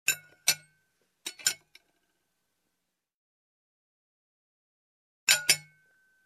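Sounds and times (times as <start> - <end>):
fork and knife on a plate: 0.1 - 1.8.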